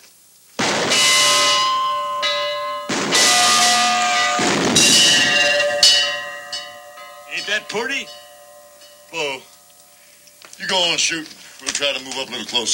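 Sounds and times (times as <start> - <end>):
large bell ringing in a tower: 0.6 - 11.1
speech: 7.6 - 8.2, 9.1 - 9.5, 10.6 - 12.7.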